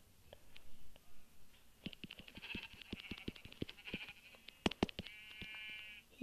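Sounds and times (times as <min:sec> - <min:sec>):
quick clicking taps: 0:01.8 - 0:05.6
sheep bleating in a video game: 0:02.3 - 0:04.4, 0:05.0 - 0:06.1.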